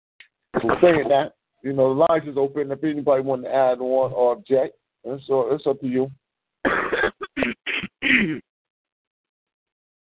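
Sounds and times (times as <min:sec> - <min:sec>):
speech: 0:00.6 - 0:06.8, 0:07.5 - 0:08.4
person clearing throat: 0:06.7 - 0:08.5.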